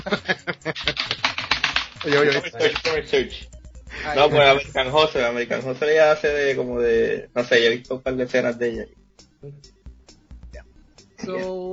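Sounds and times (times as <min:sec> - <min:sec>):
speech: 0:00.0 - 0:01.1, 0:02.0 - 0:09.8, 0:11.2 - 0:11.7
laughter: 0:00.0 - 0:01.2, 0:02.0 - 0:03.2
typing on a computer keyboard: 0:00.7 - 0:03.0.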